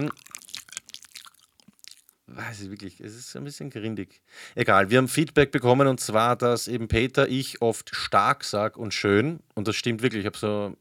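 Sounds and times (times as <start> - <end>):
speech: 0.0 - 0.2, 2.4 - 10.7
wet smacking and chewing with the mouth open: 0.0 - 2.2.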